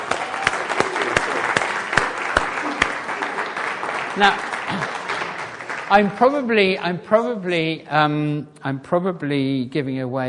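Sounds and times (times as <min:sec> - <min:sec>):
room full of people clapping: 0:00.0 - 0:07.3
speech: 0:04.2 - 0:05.0, 0:05.9 - 0:10.2.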